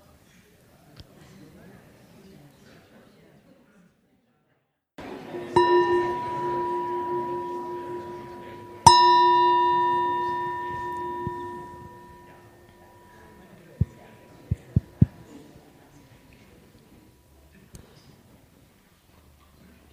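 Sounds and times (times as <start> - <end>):
meditation bell ringing: 5.0 - 15.0.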